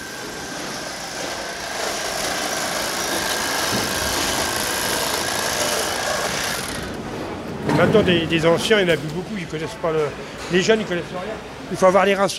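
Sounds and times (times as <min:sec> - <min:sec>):
motor saw running with a continuous buzzing drone: 0:00.0 - 0:07.0
speech: 0:07.8 - 0:12.3.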